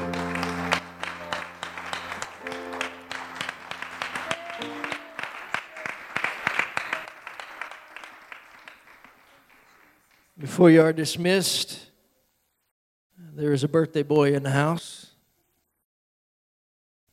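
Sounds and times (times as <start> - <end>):
sustained organ or keyboard tones: 0.0 - 7.1
crowd clapping: 0.0 - 10.4
speech: 10.6 - 11.8, 13.5 - 15.1.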